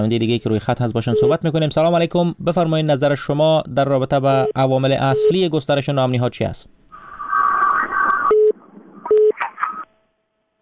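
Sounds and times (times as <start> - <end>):
speech: 0.0 - 6.8
crackly noisy phone line: 6.9 - 10.3.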